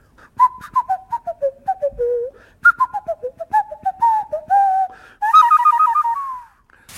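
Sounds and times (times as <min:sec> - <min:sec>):
Brazilian rainforest nose whistle being played: 0:00.4 - 0:06.6.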